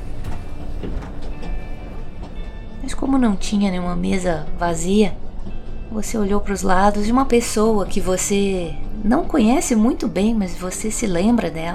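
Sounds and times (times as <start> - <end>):
sharp clacks from the rails: 0.0 - 3.6
rattling inside a moving train carriage: 0.0 - 6.2
moving train carriage interior low rumble: 0.0 - 11.7
speech: 2.8 - 5.2, 5.9 - 11.7.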